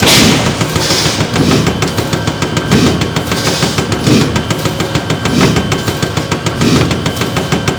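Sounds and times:
ocean pump machine running: 0.0 - 7.7.

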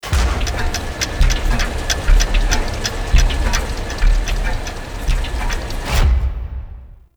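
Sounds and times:
miscellaneous machines ambience: 0.0 - 6.3.

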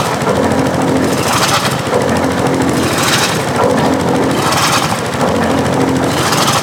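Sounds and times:
ocean pump machine running: 0.0 - 6.6.

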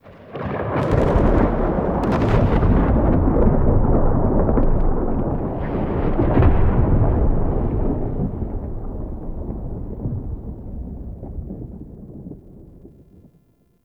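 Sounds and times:
rolling thunder outdoors: 0.0 - 13.3.

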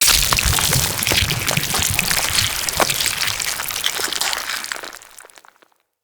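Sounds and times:
infested bone blade death gore: 0.0 - 5.2.

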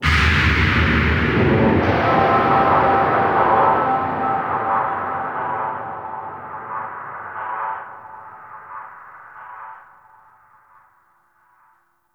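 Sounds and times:
deep abyss hit: 0.0 - 8.8
exterior ambience: 0.0 - 9.8.

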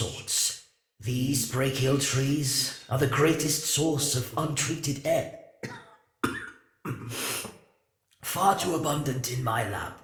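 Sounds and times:
speech: 1.0 - 5.8, 8.4 - 10.0
person coughing: 5.6 - 7.5.

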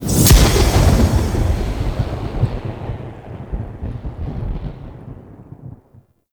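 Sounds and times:
enemy death burst effect: 0.0 - 2.9.

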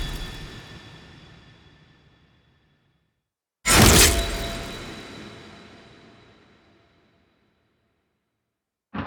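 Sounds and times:
sword stab: 3.7 - 6.2.

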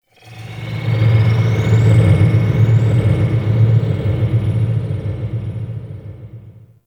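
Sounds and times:
dark ambience: 0.1 - 6.8.

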